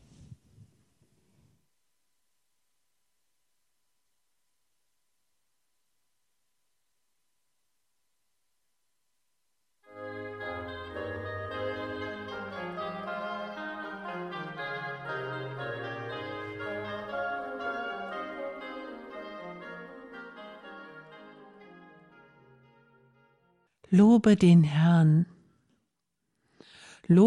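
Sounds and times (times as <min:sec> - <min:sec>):
sustained instrumental passage, likely organ or ensemble: 0:09.9 - 0:23.7
speech: 0:23.9 - 0:25.3, 0:27.0 - 0:27.2.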